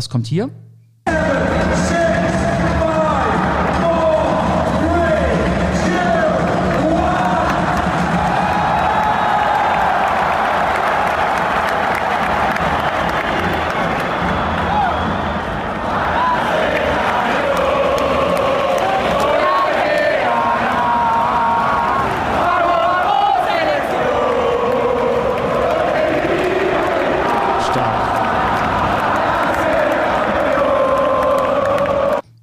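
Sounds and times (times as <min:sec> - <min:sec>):
speech: 0:00.0 - 0:02.0
football fans in stadium crowd cheering and chanting: 0:01.1 - 0:32.2
stadium crowd singing: 0:15.8 - 0:32.2.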